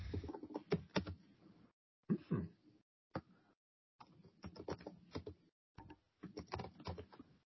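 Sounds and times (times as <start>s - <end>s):
typing on a computer keyboard: 0.3s - 1.2s, 4.0s - 7.2s.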